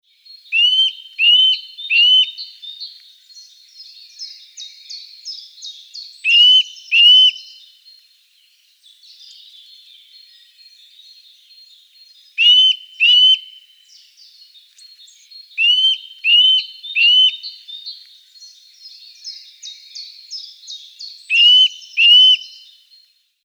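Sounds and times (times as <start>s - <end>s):
Sitta europaea calling: 0.5s - 2.4s, 6.2s - 7.6s, 12.4s - 13.5s, 15.6s - 17.7s, 20.4s - 22.7s.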